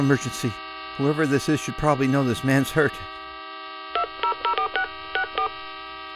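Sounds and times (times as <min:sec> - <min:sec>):
speech: 0:00.0 - 0:03.2
faint hum: 0:00.0 - 0:06.1
dual-tone beeps from a cell phone keypad found on a car's dashboard: 0:03.9 - 0:05.6.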